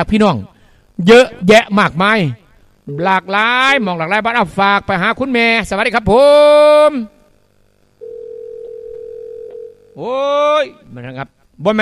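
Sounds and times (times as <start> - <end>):
speech: 0.0 - 7.2, 10.0 - 11.8
telephone line tone on an incoming call: 8.0 - 10.0.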